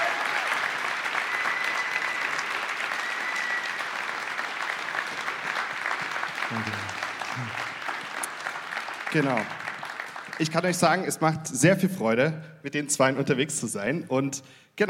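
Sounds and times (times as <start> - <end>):
audience applause: 0.0 - 11.0
low voice murmuring: 6.5 - 7.7
speech: 6.5 - 7.7, 9.1 - 9.6, 10.4 - 14.8.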